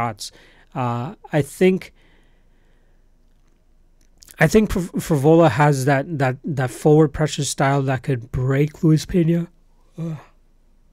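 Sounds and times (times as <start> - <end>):
speech: 0.0 - 2.0, 4.4 - 10.3
person yawning: 10.0 - 10.4.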